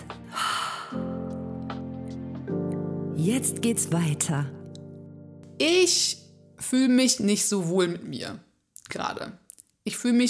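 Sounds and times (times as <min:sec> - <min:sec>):
deep breath: 0:00.3 - 0:01.2
speech: 0:03.2 - 0:04.6, 0:05.6 - 0:10.2.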